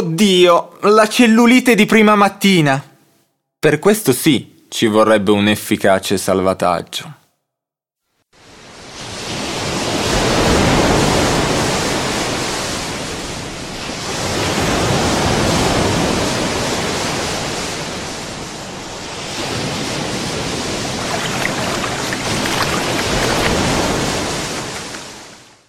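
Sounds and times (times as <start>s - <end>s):
speech: 0.1s - 2.9s, 3.6s - 7.2s
ocean waves washing onto a beach: 8.4s - 25.6s.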